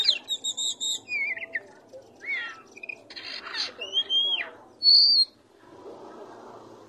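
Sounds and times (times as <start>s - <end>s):
Oriental magpie-robin singing: 0.0s - 5.4s.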